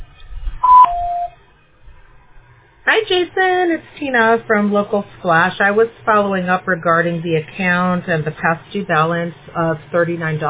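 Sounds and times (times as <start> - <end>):
voicemail beep: 0.6 - 1.4
speech: 3.0 - 10.4.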